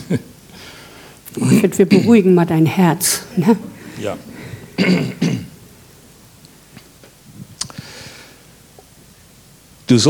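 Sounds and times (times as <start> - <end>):
speech: 0.1 - 5.3, 9.9 - 10.0
rough throaty coughs like throat clearing: 4.7 - 5.6.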